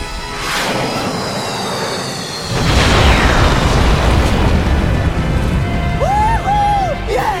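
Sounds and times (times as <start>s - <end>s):
high whistling tone: 0.2s - 3.7s
planet explosion sound effect with deep boom and rumbling roar: 0.4s - 7.3s.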